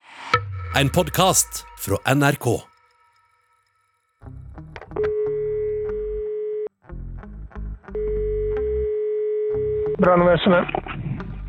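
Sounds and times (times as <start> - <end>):
speech: 0.8 - 2.7, 10.0 - 10.9
steady telephone dial tone: 5.1 - 6.7, 8.0 - 9.6.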